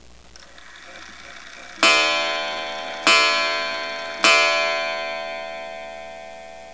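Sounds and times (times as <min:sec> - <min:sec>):
Eastlake style gingerbread kitchen clock: 0:00.4 - 0:06.7.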